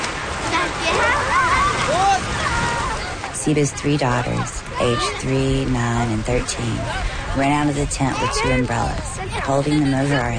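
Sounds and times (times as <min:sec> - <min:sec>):
rainstorm with water splashing all around: 0:00.0 - 0:10.3
speech: 0:03.5 - 0:10.3.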